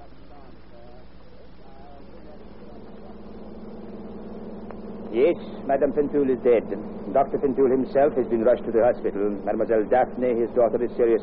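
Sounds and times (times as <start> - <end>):
faint voice: 0.0 - 3.2
car engine running with a low droning rumble: 2.4 - 11.2
speech: 5.2 - 11.2.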